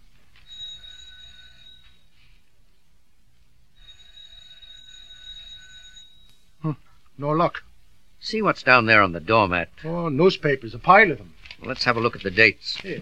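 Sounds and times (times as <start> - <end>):
apartment doorbell ringing with a high electronic tone: 0.4 - 2.2, 3.8 - 6.6
speech: 6.6 - 12.9.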